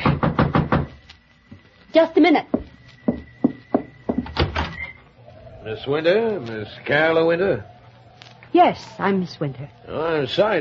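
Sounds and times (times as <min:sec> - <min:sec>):
knocking on a door: 0:00.0 - 0:01.0, 0:02.5 - 0:04.6
speech: 0:02.0 - 0:02.6, 0:05.6 - 0:07.7, 0:08.5 - 0:10.5
door noise: 0:03.4 - 0:05.1.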